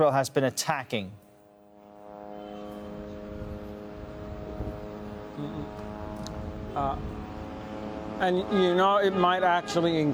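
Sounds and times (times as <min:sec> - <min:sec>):
speech: 0:00.0 - 0:01.2, 0:06.8 - 0:07.2, 0:08.2 - 0:10.1
higher whine: 0:00.0 - 0:10.1
military drone engine buzz hovering low overhead: 0:01.6 - 0:10.1.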